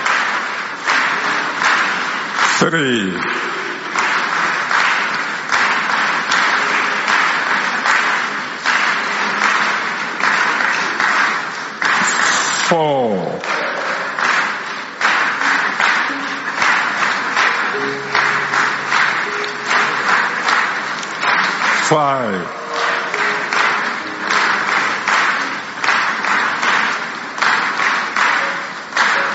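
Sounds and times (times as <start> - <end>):
large congregation clapping during prayer: 0.0 - 29.3
speech: 2.6 - 3.5.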